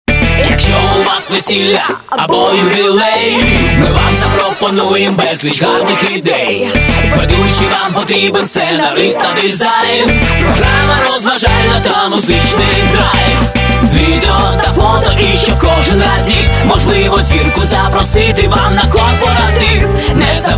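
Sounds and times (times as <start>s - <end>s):
music song: 0.1s - 20.5s.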